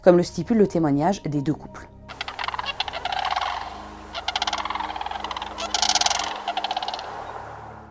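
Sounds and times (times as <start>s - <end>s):
speech: 0.0s - 1.9s
large grey red-fronted bird giving rattling trumpet-like calls: 2.1s - 7.6s.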